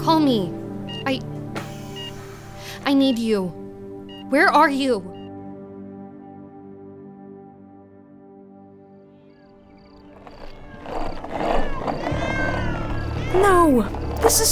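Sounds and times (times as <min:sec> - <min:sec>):
speech: 0:00.0 - 0:01.4, 0:02.8 - 0:03.6, 0:04.3 - 0:05.1, 0:13.8 - 0:14.4
group of about a dozen cats meowing and yowling at night: 0:11.6 - 0:14.0.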